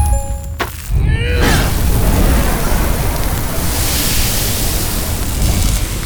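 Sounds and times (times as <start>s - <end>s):
electronic tones: 0.0s - 0.8s
fire blast melting through metal: 0.6s - 6.0s.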